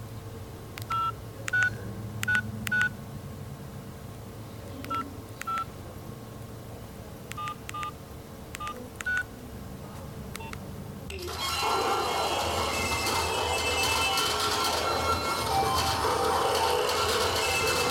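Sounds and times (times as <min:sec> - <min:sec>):
low hum: 0:00.0 - 0:17.8
mobile phone keypad tones dialing a number: 0:00.8 - 0:02.9, 0:04.8 - 0:05.7, 0:07.3 - 0:08.0, 0:08.6 - 0:09.3, 0:10.4 - 0:11.2.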